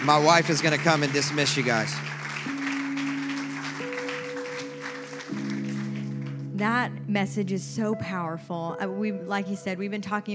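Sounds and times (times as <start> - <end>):
speech: 0.0 - 2.2, 6.6 - 10.3
crowd applause: 0.0 - 6.5
sustained organ or keyboard chords: 0.0 - 7.4.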